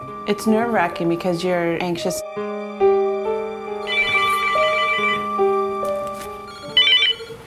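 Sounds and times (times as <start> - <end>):
speech: 0.2 - 2.5
phone ringing with electronic melodic ringtone at a home in California: 3.8 - 5.7, 6.4 - 7.4.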